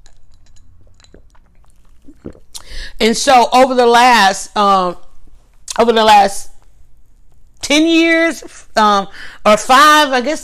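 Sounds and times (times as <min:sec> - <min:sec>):
small wet mouth clicks: 0:00.0 - 0:02.7
brief slurp and swallow: 0:00.0 - 0:02.8
quiet sip of lemonade: 0:00.0 - 0:03.0
speech: 0:03.0 - 0:05.0, 0:05.8 - 0:06.5, 0:07.7 - 0:10.4.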